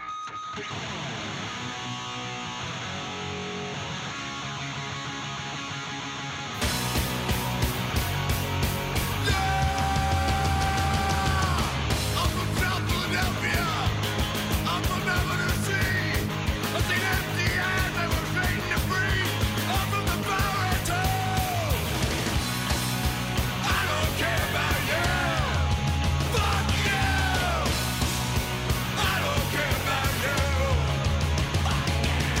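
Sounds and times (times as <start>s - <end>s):
loud rock cover song with driving guitars and drums: 0.0s - 32.3s
male singer screaming in a put-on deep gravelly voice: 9.2s - 14.0s, 14.8s - 21.9s, 23.6s - 27.8s.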